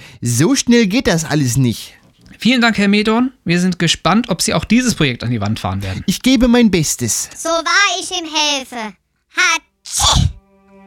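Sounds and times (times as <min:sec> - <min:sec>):
faint hum of room noise: 0:00.0 - 0:10.8
speech: 0:00.2 - 0:10.3
person sneezing: 0:09.9 - 0:10.4.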